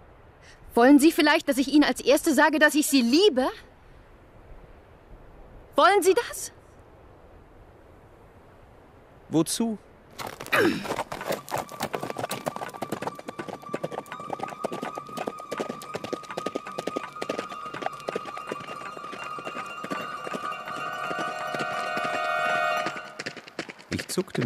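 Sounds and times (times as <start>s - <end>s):
speech: 0.8s - 3.7s, 5.8s - 6.6s, 9.3s - 11.1s, 24.2s - 24.4s
horse hooves galloping along a narrow road: 10.1s - 24.4s.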